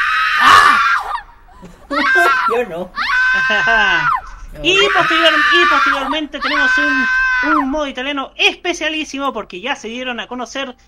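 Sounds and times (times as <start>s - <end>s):
dense crowd of people screaming excitedly: 0.0s - 1.3s, 1.9s - 7.9s
laughter: 1.4s - 4.2s
speech: 2.5s - 10.8s.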